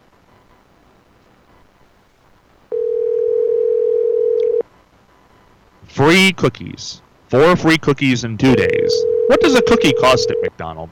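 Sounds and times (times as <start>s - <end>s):
electronic ringing tone on a phone line: 2.7s - 4.6s, 8.6s - 10.5s
speech: 6.0s - 10.8s.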